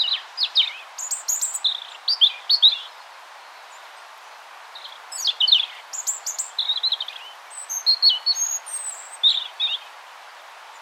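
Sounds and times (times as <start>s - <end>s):
Erithacus rubecula European robin singing: 0.0s - 3.0s, 4.8s - 9.9s.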